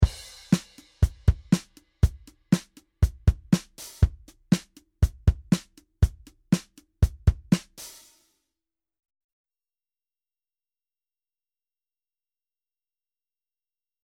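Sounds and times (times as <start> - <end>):
tight drum kit: 0.0 - 8.3.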